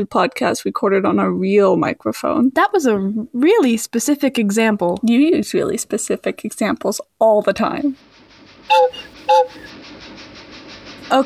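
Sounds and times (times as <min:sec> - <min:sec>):
speech: 0:00.0 - 0:08.1, 0:08.7 - 0:10.0, 0:11.1 - 0:11.2
faint steady rumble: 0:00.0 - 0:11.2
big toy train whistle toots: 0:08.7 - 0:09.7.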